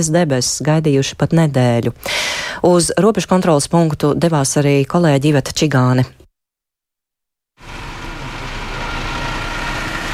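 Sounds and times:
speech: 0:00.0 - 0:06.2
queue of trucks idling at a border crossing: 0:07.6 - 0:10.1.

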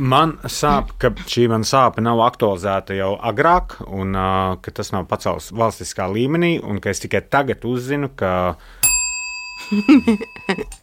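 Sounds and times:
speech: 0:00.0 - 0:08.9, 0:09.6 - 0:10.8
small bell struck once: 0:08.8 - 0:10.8.

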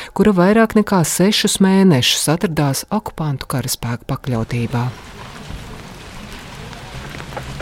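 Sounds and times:
speech: 0:00.2 - 0:05.3
steady rain pouring down in a small town in Kharkiv region Ukraine: 0:04.4 - 0:07.6
faint low murmuring: 0:04.7 - 0:07.6.

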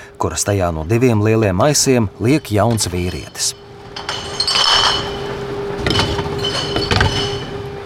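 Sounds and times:
reverse vending machine steady mechanical hum: 0:00.0 - 0:07.8
speech: 0:00.2 - 0:03.6
empty glass bottles clinking and rattling in a reverse vending machine: 0:02.2 - 0:07.7.

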